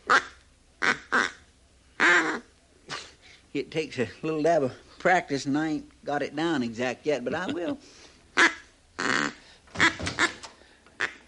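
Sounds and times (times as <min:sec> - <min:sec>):
nasal raspy quacks from a hand-blown duck call: 0:00.0 - 0:01.4, 0:02.0 - 0:02.5, 0:08.4 - 0:10.4, 0:11.0 - 0:11.2
speech: 0:03.6 - 0:08.5.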